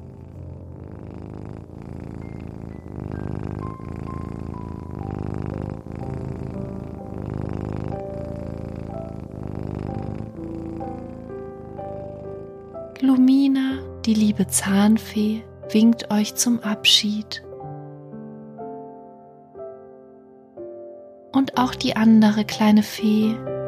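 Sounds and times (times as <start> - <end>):
cat purring curled up on a person's belly: 0.0 - 17.4
speech: 14.1 - 17.4, 21.6 - 23.5.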